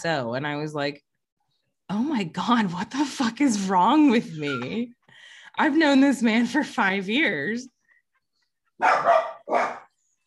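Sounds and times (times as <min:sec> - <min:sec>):
speech: 0:00.0 - 0:01.1, 0:01.9 - 0:07.8, 0:08.8 - 0:09.8
dog barking with loud harsh woofs: 0:08.8 - 0:10.0.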